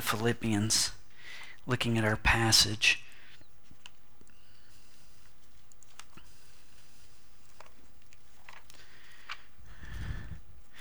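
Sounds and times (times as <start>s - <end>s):
speech: 0.1s - 1.0s, 1.6s - 3.0s
thin Bible pages being flipped: 5.2s - 6.3s, 7.4s - 10.0s.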